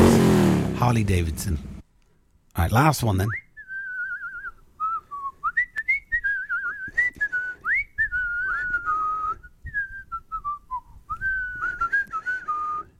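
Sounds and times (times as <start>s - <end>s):
speech: 0.8s - 1.7s, 2.6s - 3.4s
person whistling a wandering melodic tune: 3.4s - 12.9s.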